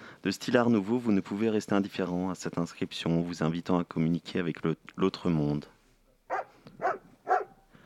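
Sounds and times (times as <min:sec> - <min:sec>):
speech: 0:00.2 - 0:05.8
dog greeting visitors at the ticket window of a dog cemetery: 0:06.3 - 0:07.6.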